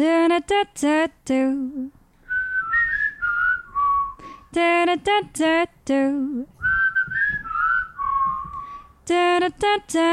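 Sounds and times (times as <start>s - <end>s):
speech: 0.0s - 2.0s, 4.5s - 6.5s, 9.1s - 10.1s
person whistling a short song melody: 2.3s - 4.2s, 6.6s - 8.8s.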